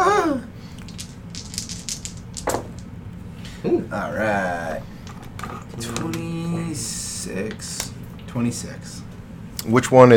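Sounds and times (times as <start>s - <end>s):
dice clattering across a table: 0.8s - 2.9s
speech: 3.6s - 4.9s, 5.8s - 9.0s, 9.6s - 10.1s.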